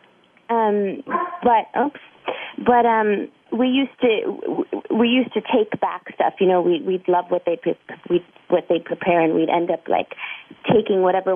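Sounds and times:
speech: 0:00.7 - 0:11.3
dog barking and whimpering: 0:01.1 - 0:01.5.

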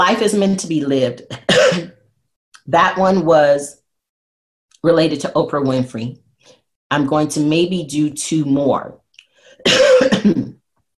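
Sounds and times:
speech: 0:00.1 - 0:02.0, 0:02.6 - 0:03.8, 0:04.8 - 0:09.0, 0:09.6 - 0:10.6
person coughing: 0:01.3 - 0:02.0, 0:09.6 - 0:10.6.

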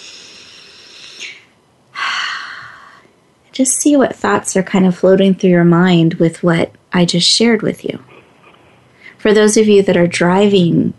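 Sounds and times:
deep breathing: 0:00.0 - 0:03.1
speech: 0:03.6 - 0:08.1, 0:09.2 - 0:10.9.

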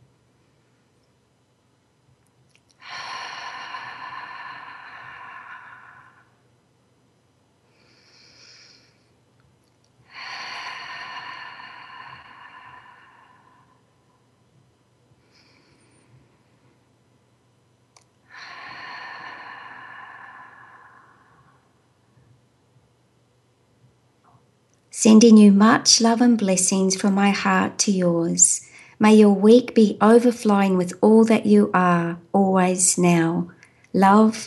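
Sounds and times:
slow deliberate breaths as a calming exercise: 0:02.8 - 0:06.5, 0:07.7 - 0:09.2, 0:10.0 - 0:14.2, 0:15.2 - 0:16.8, 0:18.2 - 0:22.0
speech: 0:25.0 - 0:34.4.

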